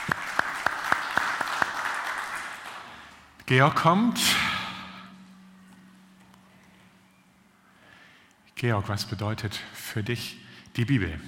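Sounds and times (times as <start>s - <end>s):
applause: 0.0s - 3.3s
faint room noise: 0.0s - 11.2s
speech: 3.5s - 4.5s, 8.6s - 11.2s.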